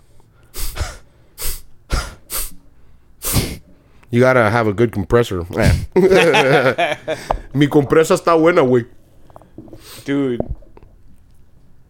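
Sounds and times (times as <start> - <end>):
forceful blows through the nose: 0.5 - 2.6, 3.2 - 3.6
speech: 4.1 - 9.0, 9.6 - 10.6
laughter: 6.0 - 7.5.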